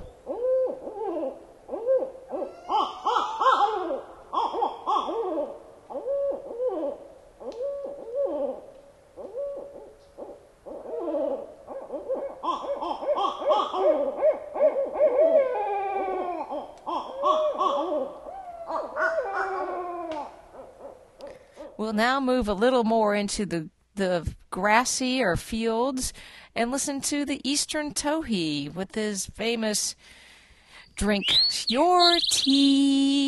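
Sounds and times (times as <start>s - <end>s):
barred owl hooting its who cooks for you call in deep woods: 0.0s - 21.8s, 31.1s - 32.8s
speech: 22.0s - 30.2s, 31.0s - 33.2s.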